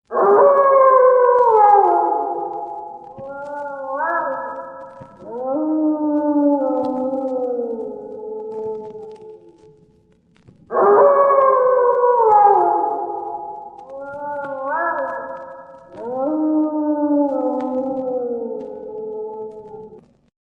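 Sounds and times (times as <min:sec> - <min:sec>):
dog howling ringtone: 0:00.1 - 0:09.8, 0:10.7 - 0:20.0.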